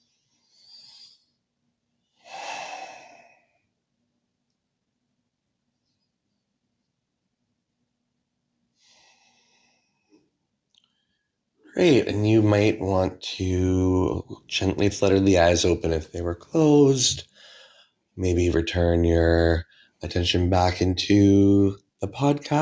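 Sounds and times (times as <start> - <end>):
slow breaths during a guided breathing exercise: 0.0 - 1.5, 2.2 - 3.8, 8.7 - 11.4, 17.2 - 18.2, 19.6 - 20.0
speech: 11.7 - 17.5, 18.2 - 22.5.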